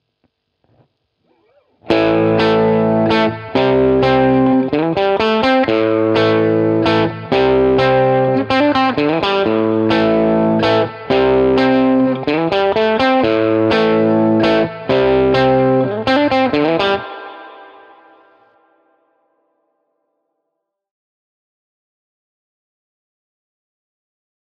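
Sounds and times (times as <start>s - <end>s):
crunch guitar riff in A minor: 0.6s - 19.2s.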